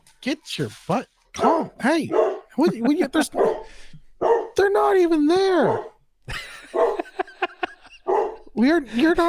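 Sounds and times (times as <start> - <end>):
speech: 0.1 - 7.0, 8.6 - 9.2
dog barking: 1.4 - 2.6, 3.3 - 4.6, 5.6 - 6.0, 6.7 - 7.3, 7.9 - 8.5
laughter: 2.5 - 3.6, 6.3 - 9.2.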